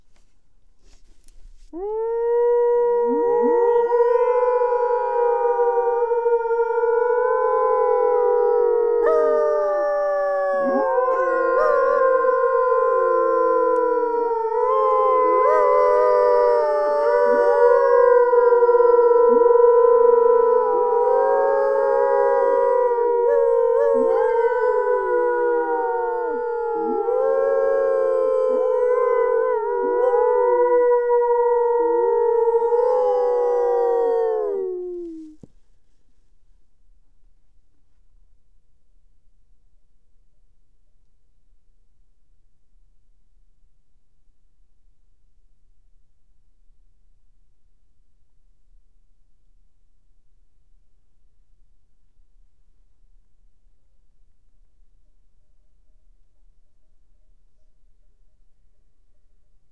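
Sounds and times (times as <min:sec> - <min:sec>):
four wolves howling with various cries: 0:01.3 - 0:35.5.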